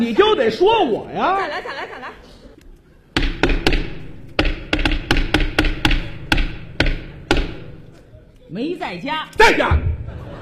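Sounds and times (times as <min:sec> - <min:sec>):
speech: 0:00.0 - 0:02.2, 0:08.5 - 0:09.9
laughter: 0:01.2 - 0:03.2, 0:09.8 - 0:10.4
knocking on a door: 0:03.2 - 0:07.8.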